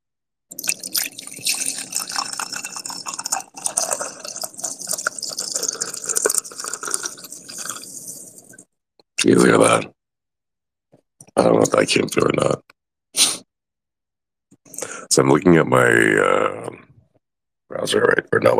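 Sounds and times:
coffee pouring into a cup: 0:00.5 - 0:08.6
speech: 0:09.3 - 0:10.0, 0:11.4 - 0:12.7, 0:15.2 - 0:16.8, 0:17.8 - 0:18.5.

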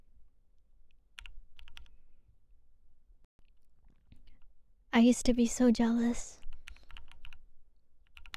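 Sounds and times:
typing on a computer keyboard: 0:01.2 - 0:01.9, 0:06.4 - 0:07.4, 0:08.0 - 0:08.3
speech: 0:05.0 - 0:06.4.

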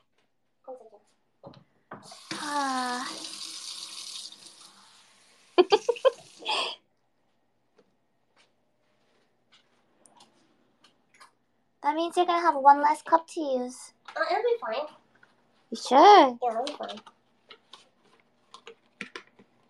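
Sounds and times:
tap water running into a sink while it is cleaned of dirt: 0:02.0 - 0:06.4
laughter: 0:05.6 - 0:06.8
speech: 0:12.1 - 0:15.0, 0:15.7 - 0:17.1.

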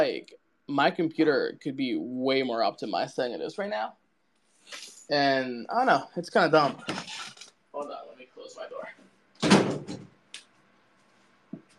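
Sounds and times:
speech: 0:00.0 - 0:04.0, 0:04.7 - 0:08.8
bedroom door pushed shut with a rattling thud: 0:09.4 - 0:10.1.

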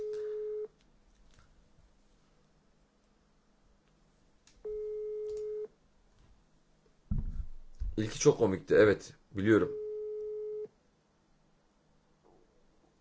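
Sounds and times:
ringback tone of an outgoing phone call: 0:00.0 - 0:00.7, 0:04.7 - 0:05.7, 0:09.7 - 0:10.7
speech: 0:08.0 - 0:09.8.

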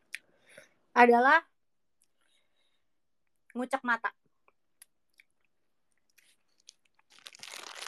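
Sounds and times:
speech: 0:01.0 - 0:01.5, 0:03.6 - 0:04.2
person crunching and chewing a macaroni snack: 0:06.0 - 0:07.8.

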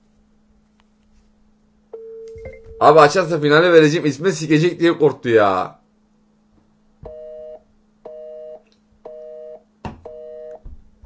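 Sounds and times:
phone call ringing tone beeps while a call is being placed: 0:02.0 - 0:02.9, 0:07.1 - 0:10.6
speech: 0:02.8 - 0:05.8.

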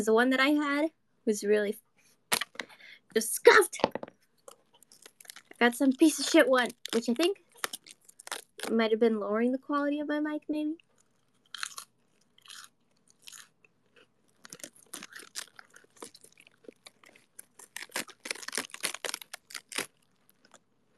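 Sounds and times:
speech: 0:00.0 - 0:01.8, 0:03.1 - 0:04.0, 0:05.6 - 0:07.4, 0:08.7 - 0:10.8
lettuce ripping: 0:04.9 - 0:08.8, 0:14.4 - 0:20.9.

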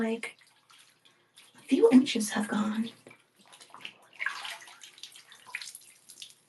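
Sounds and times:
speech: 0:00.0 - 0:00.4, 0:01.7 - 0:03.0
water poured and splashed in a bathtub by a person bathing: 0:00.0 - 0:06.4.

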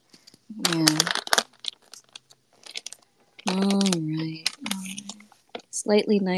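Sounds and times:
scraps of paper grabbed and crumpled: 0:00.0 - 0:05.6
speech: 0:00.6 - 0:01.1, 0:05.8 - 0:06.3
person murmuring: 0:03.5 - 0:05.2.

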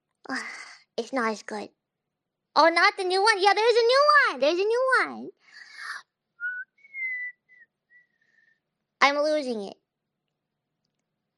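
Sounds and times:
speech: 0:00.3 - 0:01.8, 0:02.6 - 0:05.6, 0:09.0 - 0:09.8
person whistling short clear notes: 0:06.4 - 0:08.1.

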